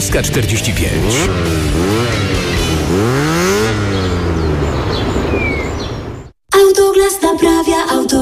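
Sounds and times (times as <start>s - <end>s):
speech: 0.0s - 3.3s, 6.7s - 8.2s
motorcycle engine revving then idling: 0.3s - 6.4s
faint bird chirps: 3.9s - 6.4s.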